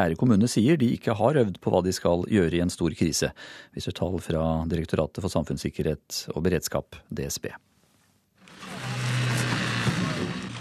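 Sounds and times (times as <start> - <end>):
speech: 0.0 - 7.7
chainsaw cutting into metal of a crashed car: 8.4 - 10.5.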